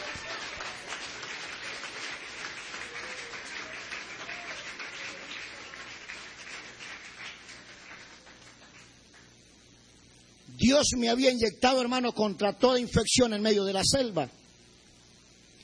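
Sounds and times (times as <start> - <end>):
audience applause at a religious testimony meeting: 0.0 - 9.3
speech: 10.7 - 14.4.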